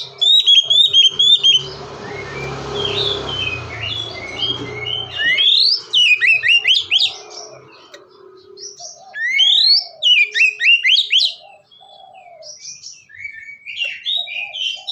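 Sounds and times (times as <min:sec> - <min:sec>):
low rumbling background: 0:00.0 - 0:08.7
Oriental magpie-robin song of upward-swept whistles and varied chirps: 0:00.0 - 0:14.9.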